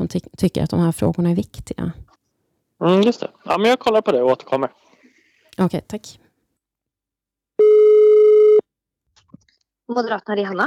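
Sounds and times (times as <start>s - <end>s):
speech: 0.1s - 2.0s, 2.8s - 4.8s, 5.6s - 6.2s, 9.9s - 10.6s
electronic telephone ringing tone of an outgoing call: 7.6s - 8.6s.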